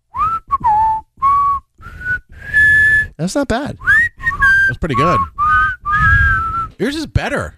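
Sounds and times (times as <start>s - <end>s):
three people whistling in harmony: 0.1s - 3.1s, 3.8s - 6.8s
speech: 3.2s - 3.9s, 4.7s - 5.4s, 6.8s - 7.5s.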